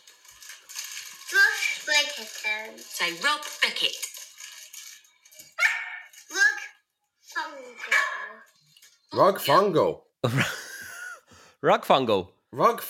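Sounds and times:
speech: 0:02.0 - 0:04.1, 0:09.2 - 0:10.6, 0:11.6 - 0:12.8
dog barking and yelping: 0:05.6 - 0:06.2, 0:07.8 - 0:08.5.

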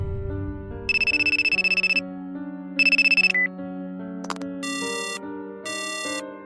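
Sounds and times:
bright looping electronic ringtone melody with pulsing high tones over a bassline: 0:00.9 - 0:02.0, 0:02.8 - 0:03.5, 0:04.2 - 0:06.2
newly bought mobile phone ringtone for an incoming call: 0:00.9 - 0:02.0, 0:02.8 - 0:03.5, 0:04.2 - 0:06.2.

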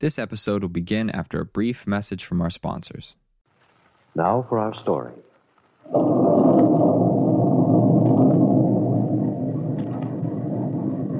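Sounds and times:
speech: 0:00.0 - 0:03.2, 0:04.2 - 0:05.2, 0:05.9 - 0:07.1
loud deep continuous thunder rumbling: 0:05.8 - 0:11.1.

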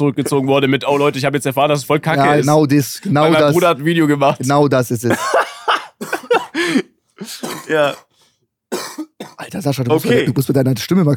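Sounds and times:
speech: 0:00.0 - 0:08.1, 0:09.0 - 0:11.1
laughter: 0:05.1 - 0:06.9
rough hoarse coughing: 0:05.4 - 0:08.1, 0:08.7 - 0:10.4.

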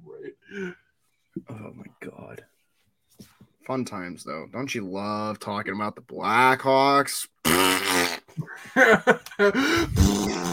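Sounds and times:
speech: 0:00.3 - 0:00.8, 0:01.6 - 0:02.5, 0:03.7 - 0:10.5
loud drawn-out fart: 0:07.4 - 0:08.3, 0:09.9 - 0:10.5.

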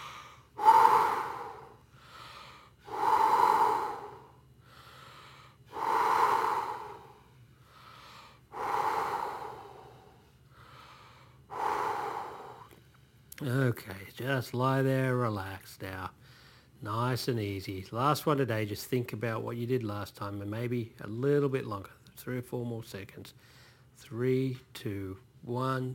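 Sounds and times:
loud shallow hissing breaths in a breathing exercise: 0:00.0 - 0:12.8
soft breath in a breathing exercise: 0:00.0 - 0:13.2, 0:16.2 - 0:16.8, 0:23.4 - 0:24.0
speech: 0:13.4 - 0:16.2, 0:16.8 - 0:25.9.

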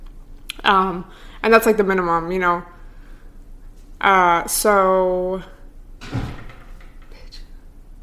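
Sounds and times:
quiet hum: 0:00.0 - 0:08.0
speech: 0:00.7 - 0:02.8, 0:04.0 - 0:06.3
door slamming shut: 0:06.0 - 0:07.0.

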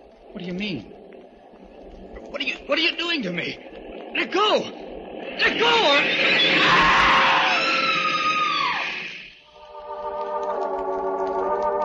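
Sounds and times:
noisy rush: 0:00.0 - 0:11.8
speech: 0:00.4 - 0:01.0, 0:02.4 - 0:04.8, 0:05.4 - 0:07.0
woman screaming: 0:06.6 - 0:08.9.

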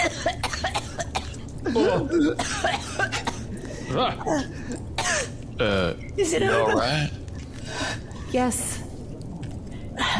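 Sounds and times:
woman coughing and sputtering as wire comes out of her esophagus: 0:00.0 - 0:03.5, 0:05.0 - 0:05.4
speech: 0:01.7 - 0:03.2, 0:03.9 - 0:04.9, 0:05.6 - 0:07.2, 0:08.3 - 0:08.8.

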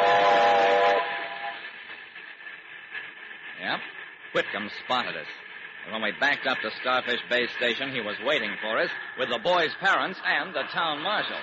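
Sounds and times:
steam train whistle blasting in a steady chord: 0:00.0 - 0:01.7
hiss of steam from a steam train: 0:00.0 - 0:11.4
speech: 0:03.7 - 0:11.4.

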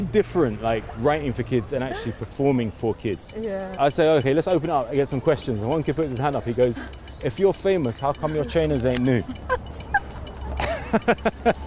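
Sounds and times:
speech: 0:00.0 - 0:09.7, 0:10.9 - 0:11.6
laughter: 0:01.5 - 0:02.5, 0:04.6 - 0:11.6
Patterdale Terrier dog whimpering: 0:09.4 - 0:10.6.

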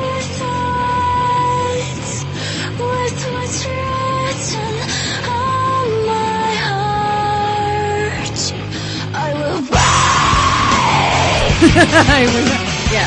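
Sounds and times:
distorted band track: 0:00.0 - 0:04.8, 0:05.4 - 0:13.0
girl screaming: 0:09.7 - 0:11.6
laughter: 0:11.2 - 0:12.7
speech: 0:11.8 - 0:13.0.

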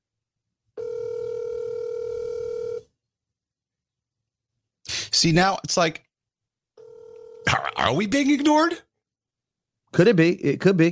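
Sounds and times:
steady electronic phone tone of a call ringing out: 0:00.8 - 0:02.9, 0:06.8 - 0:07.6
speech: 0:05.2 - 0:06.1, 0:07.4 - 0:08.9, 0:09.9 - 0:10.8.

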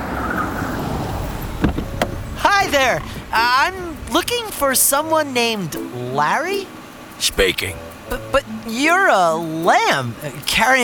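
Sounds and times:
limousine engine rumbling as it pulls up: 0:00.0 - 0:10.8
car door thump: 0:01.4 - 0:02.7
speech: 0:02.7 - 0:10.8.

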